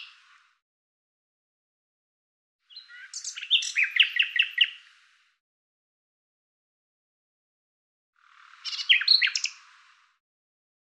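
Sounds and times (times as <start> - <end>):
Common Nightingale singing: 2.7 - 4.8, 8.6 - 9.6.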